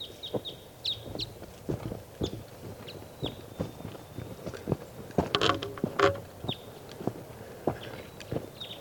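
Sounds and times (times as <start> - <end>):
wild bird chirping: 0.0 - 1.4, 2.2 - 4.7, 5.7 - 6.8, 7.8 - 8.7
irregular knocking and clopping sounds: 5.2 - 6.4.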